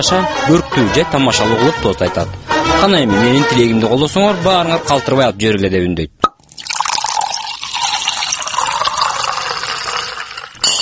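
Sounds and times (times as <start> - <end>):
speech: 0.0 - 6.2
champagne being poured for a New Year toast: 6.4 - 10.6.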